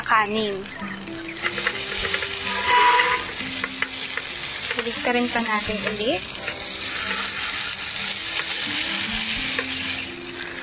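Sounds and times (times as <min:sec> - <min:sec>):
eggplant omelette sizzling as it fries in a pan: 0:00.0 - 0:10.6
speech: 0:00.1 - 0:01.8, 0:04.8 - 0:06.5
faint stirring or scraping: 0:01.4 - 0:09.8.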